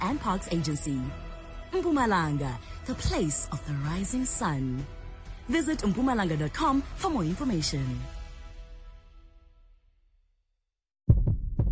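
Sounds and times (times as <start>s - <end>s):
speech: 0.1s - 8.2s
human heartbeat thumps: 11.1s - 11.7s.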